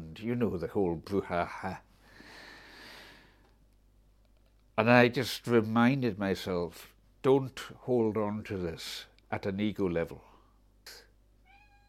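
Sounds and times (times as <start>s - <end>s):
quiet hum: 0.0s - 11.8s
speech: 0.2s - 1.9s, 4.8s - 10.3s
cat meowing: 11.4s - 11.8s.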